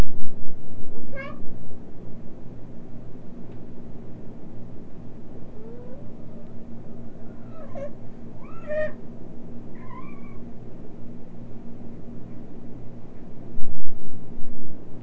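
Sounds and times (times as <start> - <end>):
steady low electrical hum: 0.0 - 15.0
cat meowing: 1.0 - 1.4, 7.2 - 9.0, 9.8 - 10.4.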